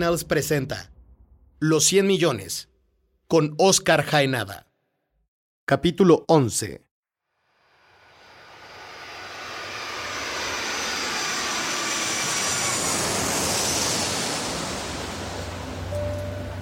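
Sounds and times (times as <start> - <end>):
speech: 0.0 - 0.9, 1.6 - 2.7, 3.3 - 4.7, 5.7 - 6.8
fully loaded airplane taking off: 7.4 - 16.5.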